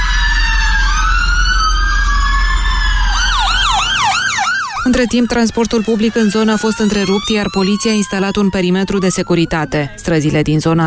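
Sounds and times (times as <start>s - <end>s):
ambulance sirens wailing: 0.0s - 10.8s
speech: 4.9s - 10.8s.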